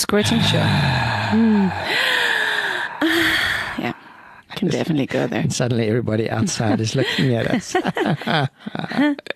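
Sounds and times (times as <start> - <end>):
speech: 0.1 - 2.1, 4.6 - 9.3
exaggerated theatrical gasping breaths: 0.2 - 4.5.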